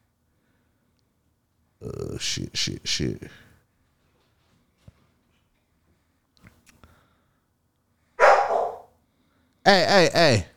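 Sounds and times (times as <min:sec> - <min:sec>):
speech: 0:01.8 - 0:03.4
dogs barking: 0:08.2 - 0:08.9.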